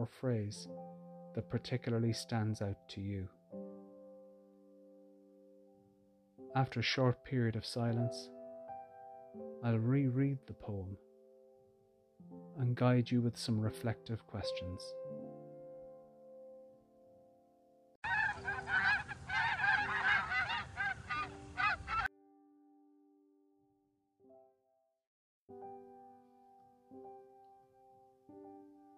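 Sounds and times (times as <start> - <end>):
speech: 0.0 - 3.4, 6.6 - 8.4, 9.3 - 11.0, 12.6 - 15.1
flock of wild geese honking: 18.0 - 22.1.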